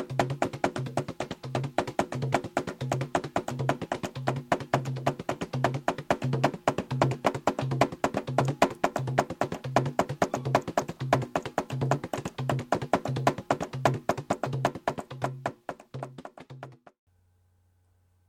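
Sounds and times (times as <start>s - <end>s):
drum ensemble playing a rhythmic pattern: 0.1s - 16.3s.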